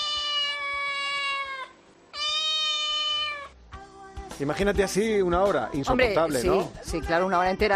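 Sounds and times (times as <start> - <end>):
cat meowing insistently for attention: 0.0 - 3.6
speech: 4.4 - 7.7.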